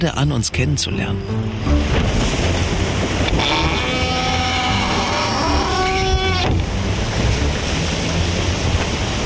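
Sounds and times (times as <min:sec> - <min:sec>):
speech: 0:00.0 - 0:01.8, 0:03.4 - 0:03.8
wind rushing over the open sea: 0:01.2 - 0:09.2
creaking groaning tone of a sailing boat: 0:01.7 - 0:08.9
sea spray on the open sea: 0:01.8 - 0:09.2.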